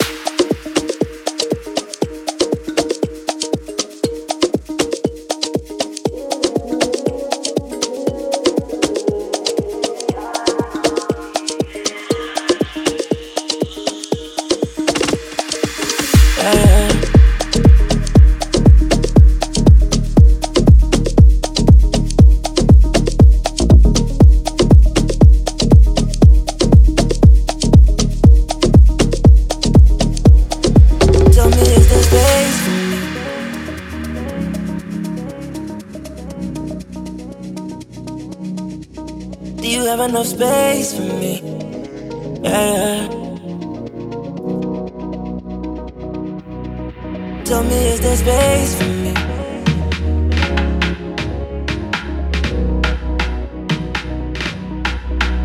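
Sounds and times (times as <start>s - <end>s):
log drum fills: 0.0s - 34.8s
Afro House clave rhythms: 0.0s - 46.8s, 47.5s - 55.4s
Afro House music with organic house textures: 0.0s - 55.4s.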